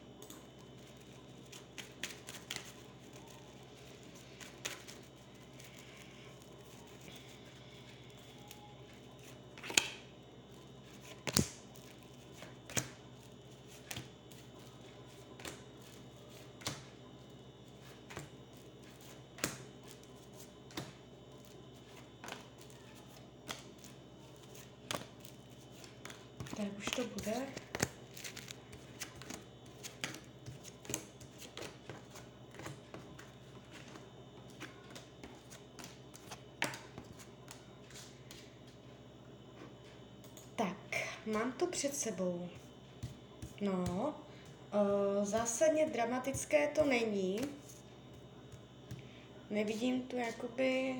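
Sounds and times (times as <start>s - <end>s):
quiet steady hum: 0.0s - 50.9s
tarot cards being shuffled and handled: 0.8s - 10.0s, 10.6s - 38.5s
speech: 26.5s - 27.6s, 41.3s - 42.6s, 43.6s - 44.2s, 44.8s - 47.6s, 49.6s - 50.9s.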